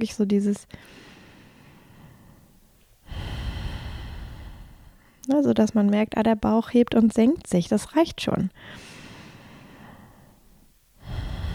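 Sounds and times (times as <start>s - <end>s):
speech: 0.0s - 1.1s, 5.3s - 8.9s
slow deep breaths in and out: 0.7s - 5.3s, 8.6s - 11.5s.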